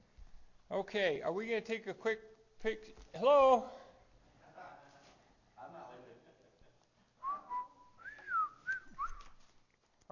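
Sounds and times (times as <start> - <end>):
speech: 0.7 - 3.8
person whistling a short wavering melody: 7.2 - 9.4.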